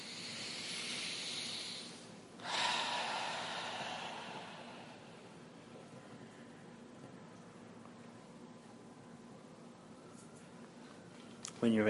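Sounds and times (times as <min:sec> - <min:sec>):
breathing in through the nose during a guided meditation exercise: 0:00.0 - 0:05.2.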